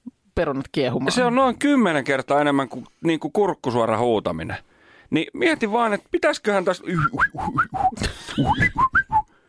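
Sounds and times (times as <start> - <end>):
speech: 0.4 - 8.9
person whistling short clear notes: 7.0 - 9.4.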